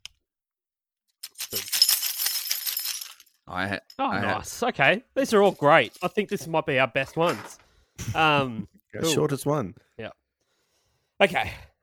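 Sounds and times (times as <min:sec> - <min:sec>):
large bunch of keys jingling: 0:01.2 - 0:03.4
speech: 0:03.5 - 0:10.2, 0:11.2 - 0:11.7.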